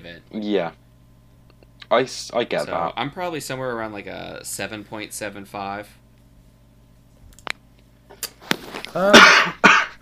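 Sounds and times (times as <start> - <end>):
speech: 0.0 - 0.8, 1.9 - 6.0, 8.9 - 9.5
sneeze: 9.0 - 9.9.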